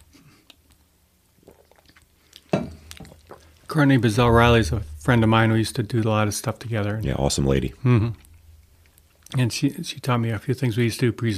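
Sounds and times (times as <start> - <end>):
person sipping a drink: 1.4 - 3.6
small swallows: 1.4 - 3.6
speech: 3.8 - 8.2, 9.3 - 11.3
sudden louder burst of noise: 4.1 - 9.2.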